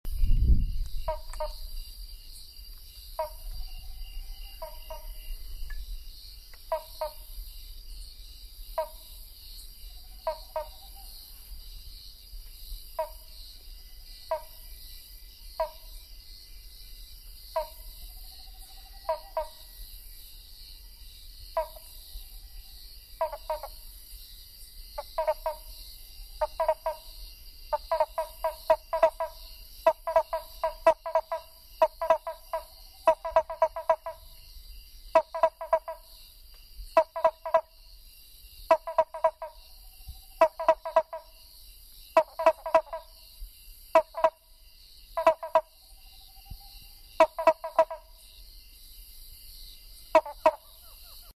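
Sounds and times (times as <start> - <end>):
Eupemphix nattereri calling: 1.0 - 1.8, 3.2 - 5.9, 6.6 - 7.4, 8.7 - 9.1, 9.8 - 11.4, 13.0 - 13.4, 14.2 - 14.8, 15.5 - 16.0, 17.5 - 19.8, 21.6 - 22.4, 23.1 - 23.8, 25.0 - 34.4, 35.1 - 36.2, 37.0 - 37.8, 38.7 - 41.4, 42.1 - 43.2, 43.9 - 44.5, 45.2 - 48.3, 50.0 - 51.3.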